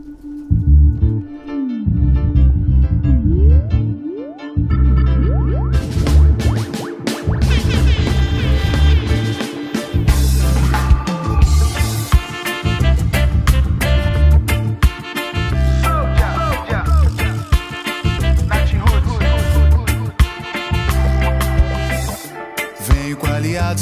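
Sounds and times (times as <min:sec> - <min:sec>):
loud bass-heavy Portuguese-language song with a steady groove: 0:00.0 - 0:23.7
bright full-band instruments: 0:04.8 - 0:23.7.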